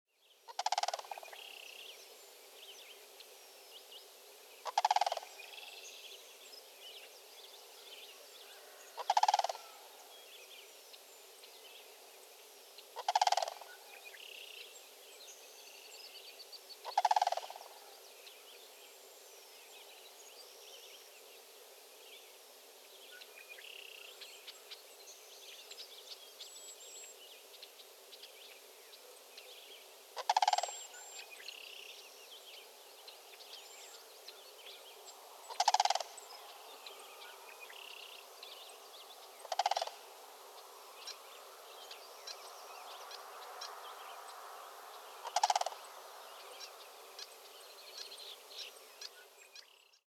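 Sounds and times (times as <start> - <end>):
sandhill crane pair calling: 0.5 - 1.4, 4.6 - 5.5, 8.5 - 10.0, 13.0 - 13.9, 16.8 - 17.9, 30.2 - 31.7, 35.4 - 40.2, 45.2 - 47.3.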